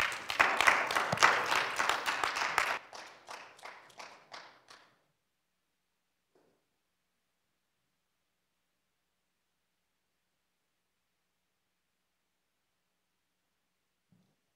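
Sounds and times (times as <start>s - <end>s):
church audience applauding during a worship service: 0.0s - 5.0s.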